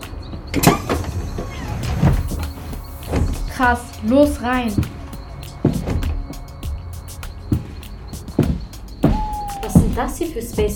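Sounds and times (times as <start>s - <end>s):
clunking movement of bus door: 0.3s - 3.7s, 4.7s - 10.2s
pneumatic rear door of a bus opening with hiss: 0.5s - 3.4s
speech: 3.6s - 4.9s, 10.0s - 10.7s.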